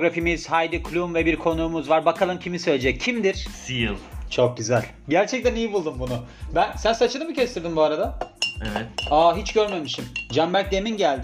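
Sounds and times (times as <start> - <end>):
speech: 0.0 - 11.2
spoon clinking against a drinking glass: 8.2 - 10.5.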